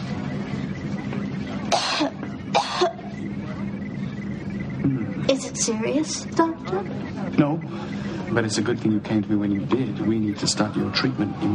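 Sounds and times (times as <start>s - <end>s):
low hum: 0.0s - 11.5s
person coughing: 1.7s - 3.1s
speech: 5.6s - 11.5s.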